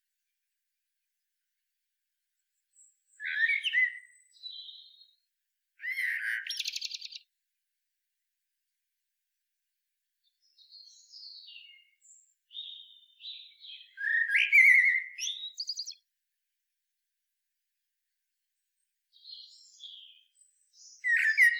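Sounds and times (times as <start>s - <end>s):
Eurasian blackbird Turdus merula singing: 2.8s - 5.2s, 5.8s - 7.3s, 10.4s - 16.0s, 19.2s - 21.5s.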